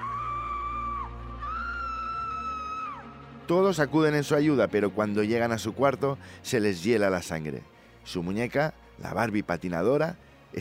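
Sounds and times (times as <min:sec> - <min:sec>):
child's high-pitched scream and wail: 0:00.0 - 0:03.0
speech: 0:03.5 - 0:10.5.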